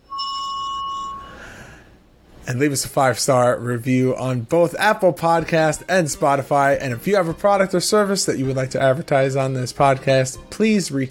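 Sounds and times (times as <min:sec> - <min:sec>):
bright metallic notification bell ding: 0:00.0 - 0:01.4
speech: 0:02.5 - 0:11.1.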